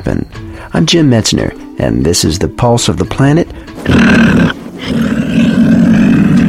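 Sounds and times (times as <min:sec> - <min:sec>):
speech: 0:00.0 - 0:05.1
mountain lion growling: 0:03.8 - 0:06.4.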